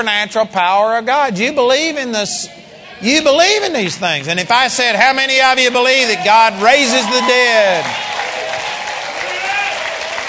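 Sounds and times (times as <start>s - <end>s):
speech: 0.0s - 8.7s
audience applause of many hands clapping: 3.7s - 10.2s.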